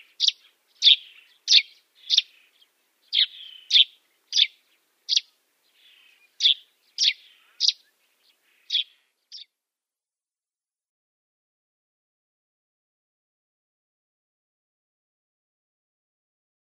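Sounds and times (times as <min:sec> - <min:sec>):
Dead Sea sparrow singing bright high chirps: 0:00.0 - 0:09.6.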